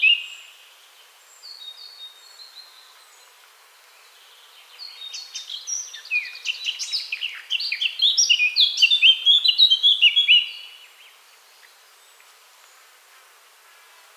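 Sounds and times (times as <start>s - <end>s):
Eurasian blackcap Sylvia atricapilla singing scratchy warble and fluted whistles: 0.0s - 0.5s, 4.6s - 12.8s.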